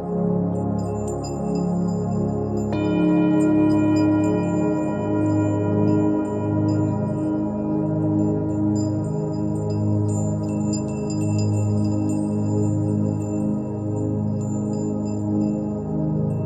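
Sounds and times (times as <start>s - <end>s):
singing bowl humming at 417 Hz: 0.6s - 16.4s
singing bowl strike with brighter ring: 2.6s - 13.4s.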